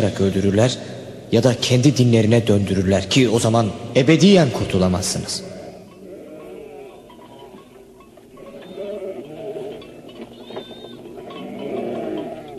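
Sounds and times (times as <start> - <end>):
speech: 0.0 - 5.6
flock of sheep bleating near a town: 6.0 - 7.6, 8.3 - 12.5.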